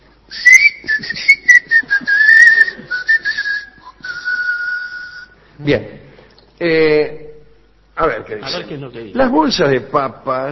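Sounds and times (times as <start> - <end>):
person whistling a tune through teeth: 0.3 - 5.4
speech: 5.6 - 6.0, 6.6 - 7.2, 8.0 - 10.5.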